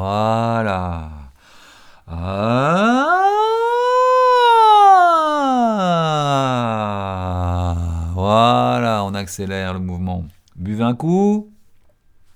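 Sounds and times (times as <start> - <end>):
speech: 0.0 - 1.1, 9.4 - 11.5
single voice imitating a siren as a vocal exercise: 2.1 - 8.2.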